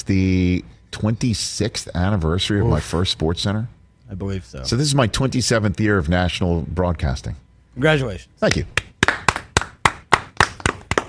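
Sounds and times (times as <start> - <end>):
speech: 0.0 - 8.8
soft polite golf clap: 8.5 - 11.0.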